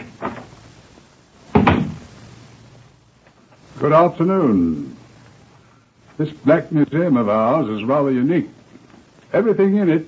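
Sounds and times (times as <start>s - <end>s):
heavy door opening into a crime museum: 1.5s - 2.1s
speech: 3.8s - 5.0s, 6.2s - 8.6s, 9.3s - 10.0s.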